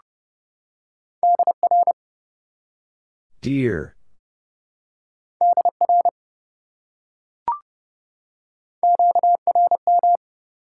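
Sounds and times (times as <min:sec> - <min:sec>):
Morse code beeps sent at 30 words per minute: 0:01.3 - 0:01.9, 0:08.9 - 0:10.2
speech: 0:03.5 - 0:04.0.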